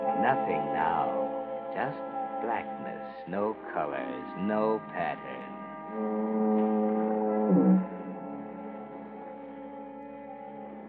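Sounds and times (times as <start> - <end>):
speech: 0.2 - 6.8
distant foghorn moaning in fog and drizzle: 4.2 - 9.0.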